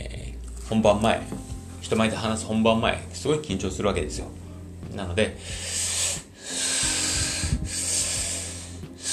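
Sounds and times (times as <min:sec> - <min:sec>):
speech: 0:00.7 - 0:04.4, 0:05.0 - 0:05.8
deep breathing as a calming technique: 0:05.4 - 0:09.1.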